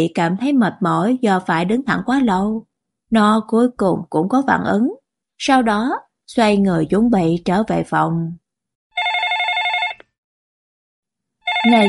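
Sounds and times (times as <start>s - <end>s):
speech: 0.0s - 8.4s, 11.6s - 11.8s
landline telephone ringing electronically: 8.9s - 10.2s, 11.4s - 11.8s.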